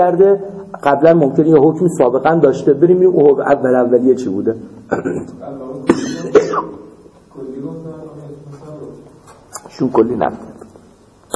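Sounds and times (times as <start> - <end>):
speech: 0.0 - 6.8, 9.7 - 10.5
person coughing: 4.9 - 6.9.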